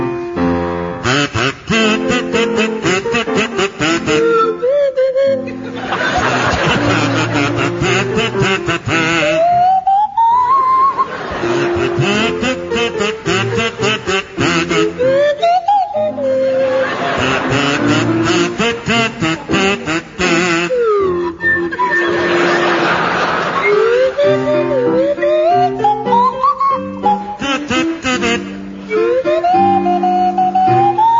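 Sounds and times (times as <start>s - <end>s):
buzzy nasal kazoo melody: 0.1s - 31.1s
laughter: 5.3s - 9.5s, 10.6s - 15.2s, 16.6s - 20.7s, 21.5s - 26.0s
swanee whistle sliding glides: 14.9s - 17.1s, 20.7s - 22.6s, 23.6s - 27.3s, 28.9s - 31.1s.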